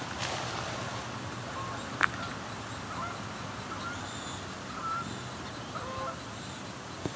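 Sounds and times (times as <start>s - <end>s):
Canada geese honking over a river: 0.0s - 7.1s
outdoor hiss: 0.0s - 7.1s.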